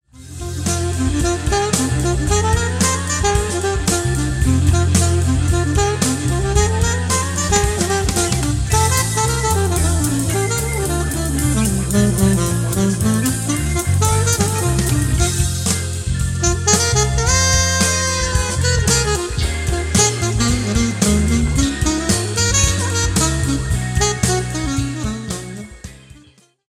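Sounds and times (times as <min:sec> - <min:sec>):
alto saxophone playing bebop: 0:00.1 - 0:26.5.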